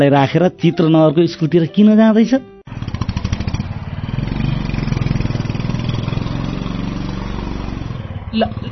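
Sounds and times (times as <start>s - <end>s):
speech: 0.0s - 2.5s, 8.4s - 8.6s
motorcycle engine running on a road: 2.7s - 8.7s.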